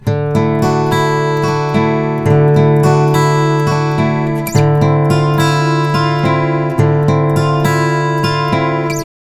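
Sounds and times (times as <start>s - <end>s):
guitars recorded separately: 0.0s - 9.1s.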